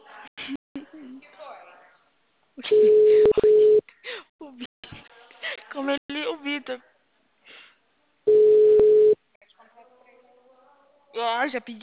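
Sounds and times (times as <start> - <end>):
telephone tone while a call is placed to a client: 2.7 - 3.8, 8.3 - 9.2
speech: 11.5 - 11.8.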